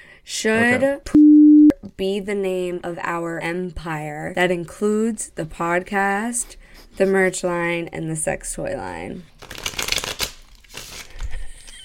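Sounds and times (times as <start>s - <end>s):
speech: 0.2s - 1.2s, 2.0s - 9.6s
deck of tarot cards being shuffled: 9.4s - 11.4s.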